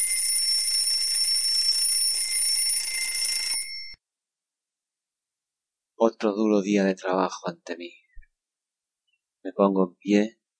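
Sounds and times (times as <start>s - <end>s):
alarm clock ringing with shrill metallic jangle: 0.0s - 4.0s
speech: 6.0s - 8.0s, 9.4s - 10.4s.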